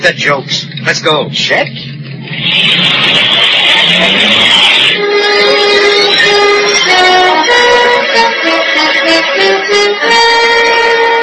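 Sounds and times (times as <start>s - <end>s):
speech: 0.0s - 6.3s, 6.9s - 11.1s
hot-wired speedboat engine starting and revving: 1.8s - 8.0s.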